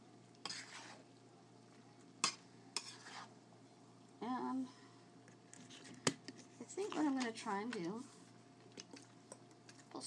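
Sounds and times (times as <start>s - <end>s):
noodles bubbling and sizzling in a pan: 0.0s - 10.0s
sharp scraping stir strokes in a pan of noodles: 0.4s - 1.0s, 2.8s - 3.3s
speech: 6.8s - 8.2s.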